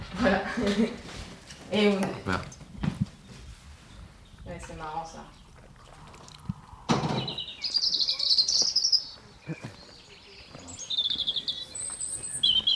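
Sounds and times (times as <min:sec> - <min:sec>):
speech: 0:00.2 - 0:01.1, 0:01.7 - 0:02.6
several birds chirping and trilling outdoors: 0:02.1 - 0:12.7
brief thump: 0:06.9 - 0:07.4.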